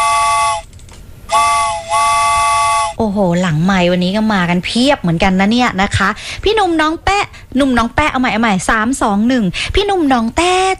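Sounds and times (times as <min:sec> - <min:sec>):
steam train whistle: 0:00.0 - 0:00.6, 0:01.3 - 0:03.0
speech: 0:03.2 - 0:10.7.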